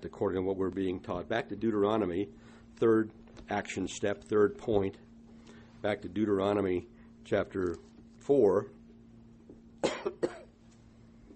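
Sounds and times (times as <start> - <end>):
speech: 0.1 - 5.1, 5.8 - 8.8
coughing and throat clearing: 9.8 - 10.6.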